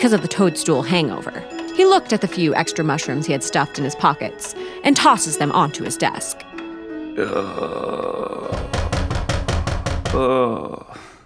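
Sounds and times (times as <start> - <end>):
speech: 0.0 - 6.5, 7.2 - 8.0, 10.1 - 10.8
man groaning and straining: 7.2 - 9.0, 10.1 - 11.2
heavy pounding knocks on a door: 8.5 - 10.3.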